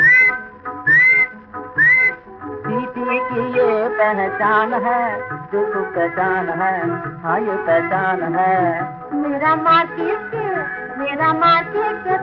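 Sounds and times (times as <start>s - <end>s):
whistled melody in a song: 0.0s - 3.6s
steady musical backing: 0.0s - 12.2s
speech: 4.0s - 10.4s, 11.0s - 12.2s.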